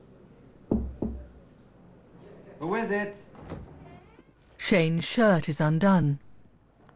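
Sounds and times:
knocking on an office door: 0.7 - 1.4
speech: 2.6 - 3.6, 4.7 - 6.2.

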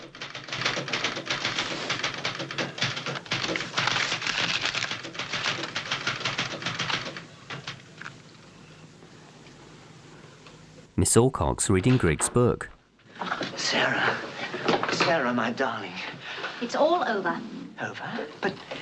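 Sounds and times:
typewriter keystrokes clattering: 0.0 - 7.8
speech: 11.0 - 12.8, 13.7 - 14.3, 15.1 - 18.7.

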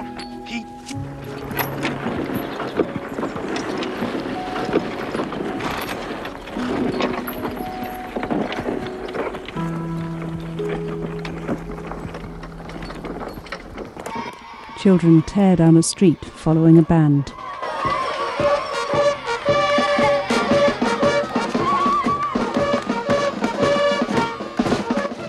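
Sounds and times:
sustained low tones: 0.0 - 17.4
horse hooves clopping up a steep hill: 0.0 - 25.2
horse tack rattling and creaking: 0.0 - 25.2
plough dragged by horses up a steep hill: 0.0 - 25.2
speech: 14.8 - 17.4.

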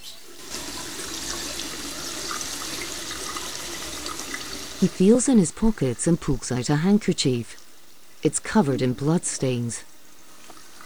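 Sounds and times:
water running from sink taps in a men's restroom: 0.0 - 7.8
speech: 4.8 - 7.6, 8.2 - 9.9.

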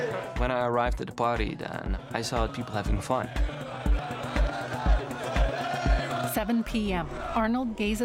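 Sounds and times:
dense noisy crowd voices roaring in a street: 0.0 - 0.4, 2.4 - 8.0
deep pounding beat: 0.0 - 8.0
speech: 0.4 - 3.9, 6.4 - 8.0.

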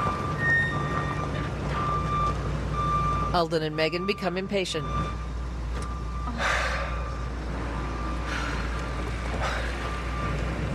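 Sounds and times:
tractor trailer reversing alarm electronic beeps: 0.0 - 8.7, 9.4 - 10.7
tractor trailer heavy engine rumble: 0.0 - 10.7
speech: 3.3 - 5.2.

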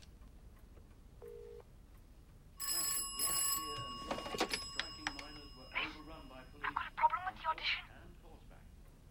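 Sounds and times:
telephone ringing: 2.6 - 7.9.

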